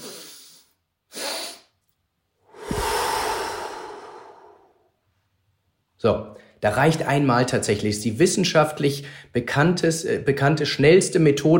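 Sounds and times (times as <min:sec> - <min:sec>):
long slow breathy exhale: 0:00.0 - 0:01.7, 0:02.5 - 0:05.0
double inhale through the nose: 0:00.0 - 0:01.8
speech: 0:06.0 - 0:11.5.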